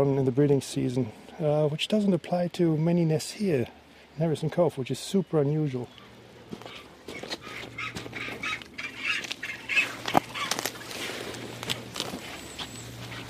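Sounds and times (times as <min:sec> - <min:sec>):
speech: 0:00.0 - 0:07.2
steady low hum: 0:05.8 - 0:13.2
rustling: 0:06.4 - 0:13.2
scuffing footsteps on rocky ground: 0:06.4 - 0:13.2
crested penguins calling at a nest: 0:06.6 - 0:10.6.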